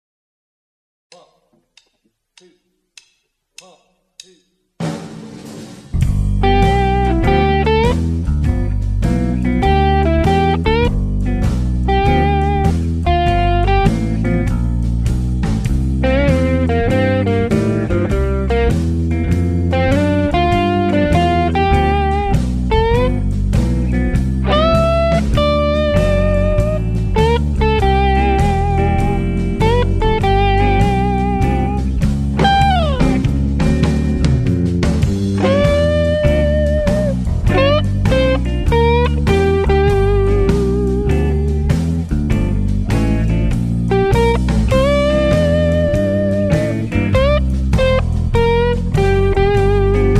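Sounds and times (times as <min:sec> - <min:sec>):
slow easy blues guitar solo: 0:05.9 - 0:50.1.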